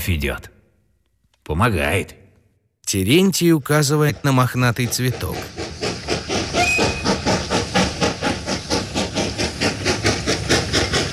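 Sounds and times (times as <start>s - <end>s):
speech: 0.0s - 0.6s, 1.5s - 2.2s, 2.9s - 5.7s
steam locomotive pulling a freight train puffing: 3.0s - 11.1s
rumbling rail clatter of a freight train: 3.4s - 11.1s
faint steam locomotive whistle tone: 6.6s - 7.0s.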